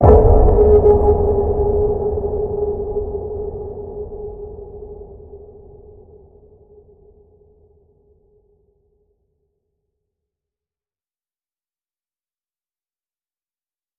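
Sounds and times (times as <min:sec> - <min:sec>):
deep water ping in G sharp: 0:00.0 - 0:06.0.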